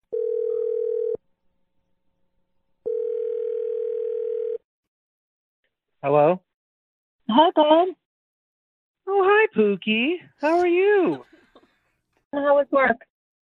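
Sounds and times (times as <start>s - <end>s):
long steady telephone ringing tones: 0.1s - 1.2s, 2.9s - 4.7s
speech: 6.1s - 6.5s, 7.4s - 8.0s, 9.5s - 11.3s, 12.3s - 13.1s.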